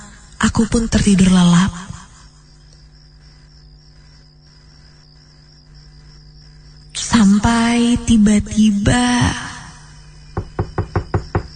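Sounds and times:
quiet slightly hissing background: 0.0s - 11.5s
speech: 0.4s - 2.0s, 7.9s - 9.5s
knocking on a bedroom door at night: 10.3s - 11.5s.

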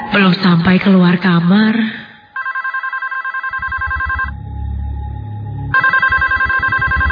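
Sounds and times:
speech: 0.2s - 2.0s
telephone ringing with a trilling electronic bell: 2.3s - 4.3s, 5.7s - 7.1s.

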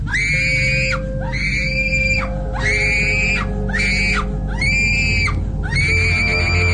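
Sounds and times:
low rumble: 0.0s - 6.7s
girl screaming: 0.1s - 6.7s.

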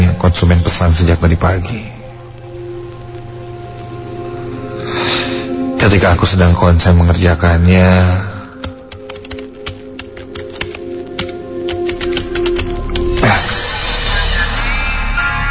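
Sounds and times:
speech: 0.2s - 1.9s, 5.8s - 8.3s
loud steady sound: 0.9s - 6.2s, 11.9s - 15.5s
typing on a computer keyboard: 8.6s - 13.2s.

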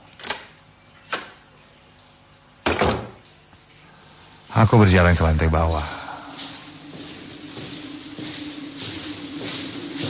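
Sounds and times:
steady high insect-like chirping tone: 0.0s - 10.0s
office door being closed: 2.6s - 3.2s
speech: 4.6s - 6.0s.

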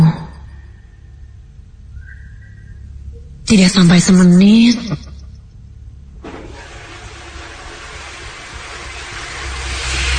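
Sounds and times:
speech: 3.5s - 5.1s
water tap running in a bathroom: 6.2s - 10.1s.

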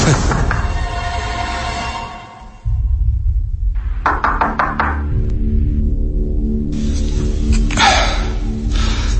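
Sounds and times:
low rumbling drone: 0.2s - 9.1s
knocking on a closed room door off a third-floor corridor: 4.0s - 5.2s.

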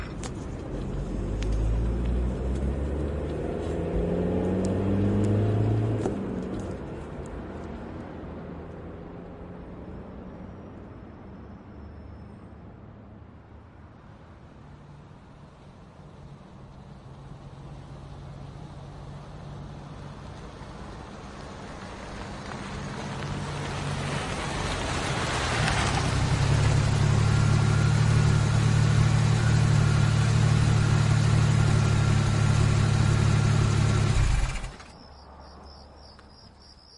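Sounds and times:
steady road drone of a car: 0.0s - 36.9s
car accelerating away: 0.8s - 6.6s, 23.0s - 34.9s.

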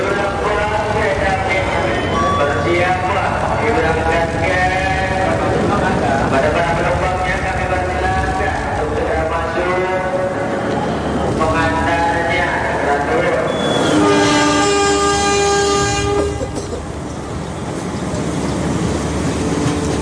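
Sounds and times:
passenger train rolling along: 0.0s - 20.0s
passenger train horn blowing a sustained chord: 13.5s - 16.6s.

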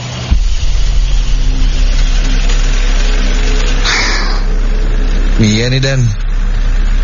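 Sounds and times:
car engine droning while accelerating uphill: 0.0s - 7.0s
harsh caw-like call: 3.8s - 4.6s
speech: 5.6s - 6.3s.

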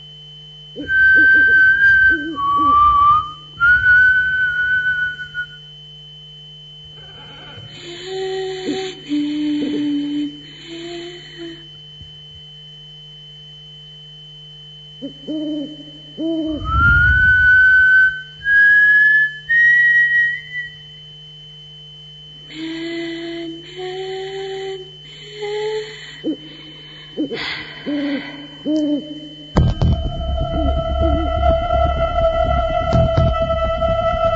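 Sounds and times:
softer hooting tonal voice: 0.8s - 5.6s, 6.9s - 11.7s, 15.0s - 20.8s, 22.6s - 34.3s
person whistling long steady notes: 0.8s - 5.7s, 16.4s - 20.9s.

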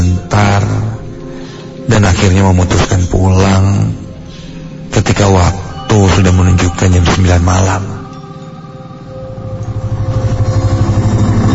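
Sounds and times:
speech: 1.9s - 4.0s, 5.0s - 8.0s
motorcycle engine running as a rider heads home at night: 9.7s - 11.5s.

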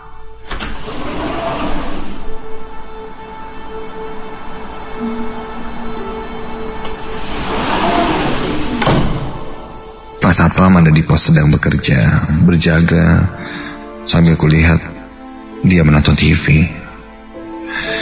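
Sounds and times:
automatic sliding door whirring open with a motor hum: 0.4s - 2.5s, 6.5s - 9.8s
speech: 10.3s - 14.9s, 15.6s - 16.8s.

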